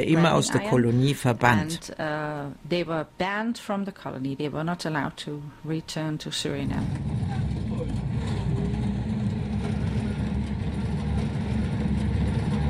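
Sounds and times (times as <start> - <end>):
speech: 0.0 - 7.2
rusty old bus engine droning on a rough rainforest track: 6.6 - 12.6.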